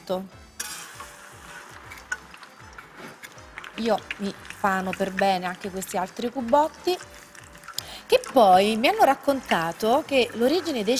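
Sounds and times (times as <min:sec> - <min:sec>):
speech: 0:00.1 - 0:00.4, 0:03.8 - 0:07.2, 0:08.1 - 0:10.9
food frying briefly in hot oil: 0:00.4 - 0:10.9
light stirring clicks: 0:00.6 - 0:10.9.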